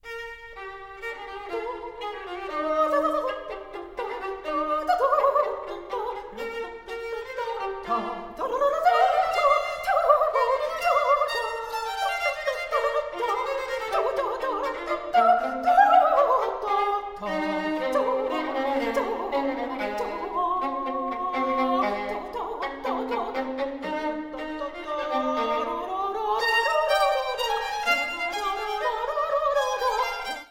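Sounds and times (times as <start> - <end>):
two violins playing a Serbian dance: 0.0 - 30.4.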